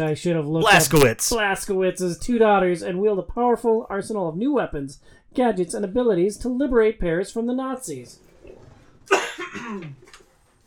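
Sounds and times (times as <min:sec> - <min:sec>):
speech: 0:00.0 - 0:10.1
sharp cough: 0:09.1 - 0:10.0.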